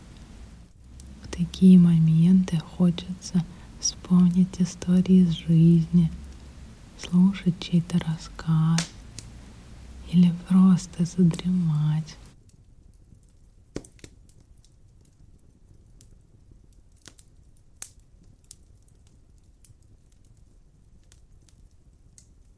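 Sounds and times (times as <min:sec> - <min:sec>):
fireplace fire crackling with pops and snaps: 0:00.0 - 0:22.5
speech: 0:01.4 - 0:06.2, 0:07.0 - 0:09.0, 0:10.1 - 0:12.2.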